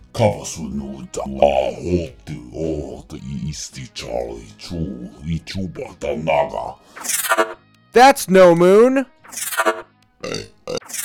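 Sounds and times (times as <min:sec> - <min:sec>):
speech: 0:00.2 - 0:10.8
loud gurgling burp: 0:10.2 - 0:11.0.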